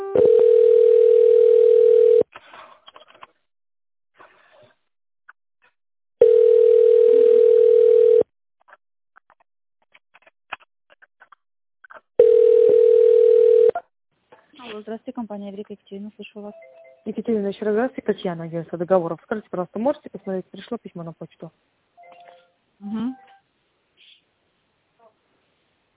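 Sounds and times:
telephone line tone while on hold during a call to a company: 0.0 - 2.2, 6.2 - 8.3, 12.2 - 13.8
speech: 15.4 - 21.8, 22.8 - 23.2.

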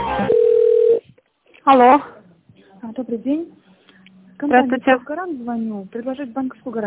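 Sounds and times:
telephone line tone during a business call on hold for transfer: 0.2 - 1.0
speech: 1.7 - 2.1, 2.9 - 3.5, 4.4 - 6.8
chatter: 2.0 - 6.8.

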